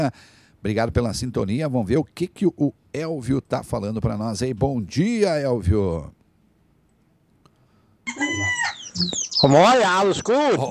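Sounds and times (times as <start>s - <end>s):
speech: 0.0s - 6.2s, 8.1s - 10.6s
rooster crowing: 8.1s - 9.4s.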